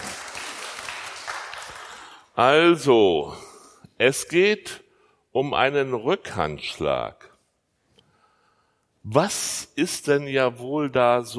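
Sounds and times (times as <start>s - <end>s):
audience applause: 0.0s - 2.2s
speech: 2.4s - 3.4s, 4.0s - 7.3s, 9.0s - 11.3s.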